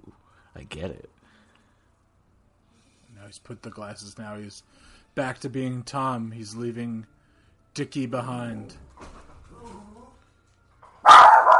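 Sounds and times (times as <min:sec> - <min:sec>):
speech: 0:00.6 - 0:01.2, 0:03.2 - 0:07.2, 0:07.8 - 0:09.1
dog barking: 0:11.0 - 0:11.5.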